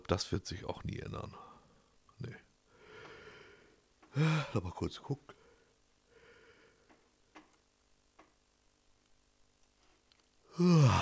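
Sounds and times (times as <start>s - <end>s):
speech: 0.1s - 1.5s, 2.2s - 2.4s, 4.2s - 5.4s, 10.6s - 11.0s
person yawning: 4.2s - 4.5s, 10.5s - 11.0s.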